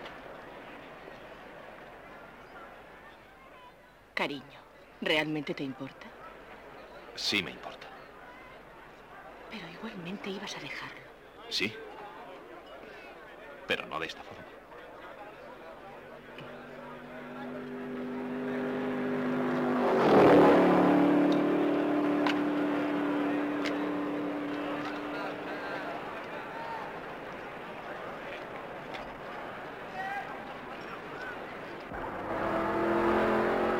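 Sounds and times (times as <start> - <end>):
speech: 4.2 - 6.2, 7.2 - 7.9, 9.5 - 11.9, 13.7 - 14.4
race car roaring past through the chicane: 16.5 - 26.9, 31.9 - 33.7.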